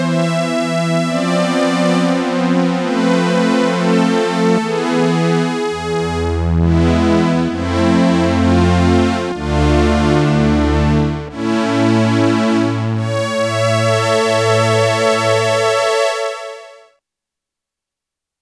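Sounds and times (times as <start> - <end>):
high strings on Korg DW-8000 synthesizer: 0.1 - 16.8.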